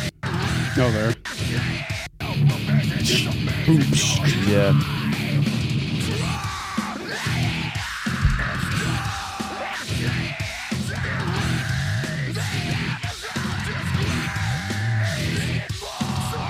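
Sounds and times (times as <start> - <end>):
harsh distorted screaming vocals: 0.0 - 16.4
heavy guitars in metal music: 0.0 - 16.4
speech: 0.8 - 5.5
pounding drums in metal music: 7.9 - 10.6.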